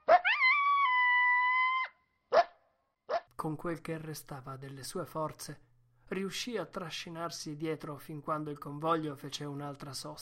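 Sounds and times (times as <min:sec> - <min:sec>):
exhausted dog lying in soft snow yelping: 0:00.0 - 0:03.3
exhausted dog lying in soft snow howling mournfully: 0:00.1 - 0:02.0
speech: 0:03.4 - 0:10.2.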